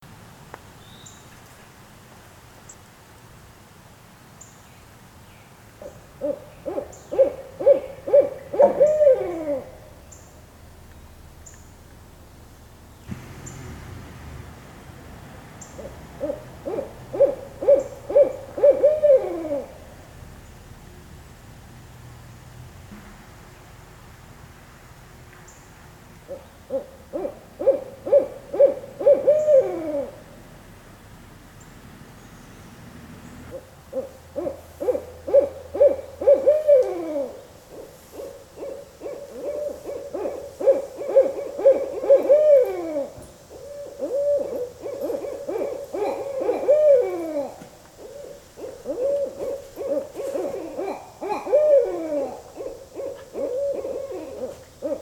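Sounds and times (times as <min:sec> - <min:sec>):
barred owl hooting: 0:05.8 - 0:10.0, 0:15.6 - 0:19.9, 0:26.3 - 0:30.4, 0:33.5 - 0:55.0.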